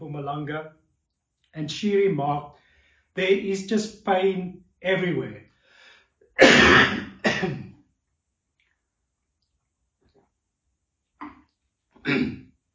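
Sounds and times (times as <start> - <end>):
speech: 0.2 - 0.8, 1.5 - 2.6, 3.2 - 5.4, 12.0 - 12.4
dry harsh coughing: 6.4 - 7.7, 12.0 - 12.4.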